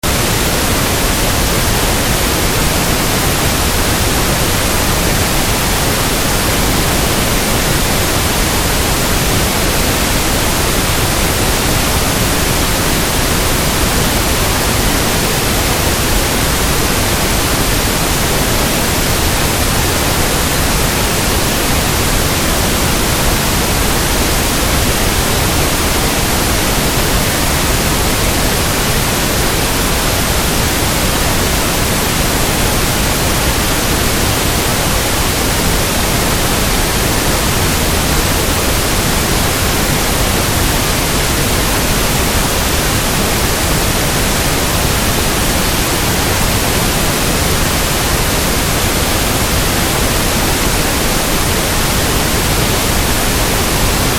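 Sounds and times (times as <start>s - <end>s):
centred pink noise: 0.0s - 54.1s.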